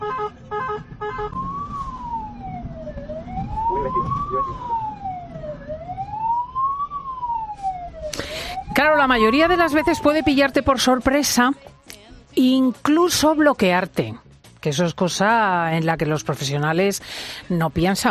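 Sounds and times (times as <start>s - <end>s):
ambulance siren wailing: 0.0s - 11.5s
low traffic rumble: 0.0s - 11.8s
speech: 9.0s - 11.7s, 12.4s - 18.0s.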